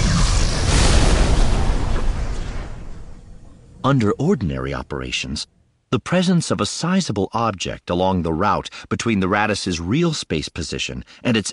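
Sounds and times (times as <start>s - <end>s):
explosion: 0.0s - 3.8s
speech: 3.8s - 11.5s.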